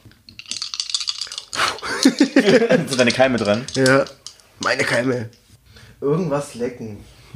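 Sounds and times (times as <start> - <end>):
dice rattling across a hard surface: 0.3 - 5.0
laughter: 1.6 - 3.4
speech: 2.4 - 5.4, 6.0 - 7.3.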